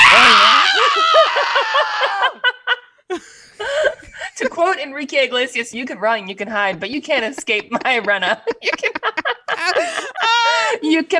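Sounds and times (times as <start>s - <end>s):
woman screaming: 0.0s - 2.4s, 10.2s - 10.8s
woman's squealing laugh-like yelps: 0.0s - 2.4s
laughter: 0.2s - 4.6s, 6.2s - 10.8s
speech: 4.8s - 9.0s, 10.8s - 11.1s.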